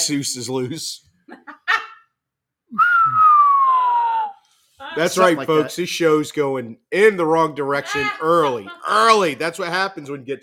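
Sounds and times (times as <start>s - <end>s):
speech: 0.0s - 1.1s, 5.0s - 10.4s
slide whistle gliding downward: 2.8s - 4.4s.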